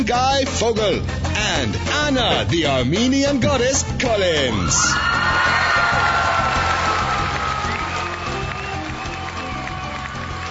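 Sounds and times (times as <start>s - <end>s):
speech: 0.0s - 6.1s
scattered whoops: 4.6s - 10.2s
crowd applause from a large audience: 5.0s - 10.4s.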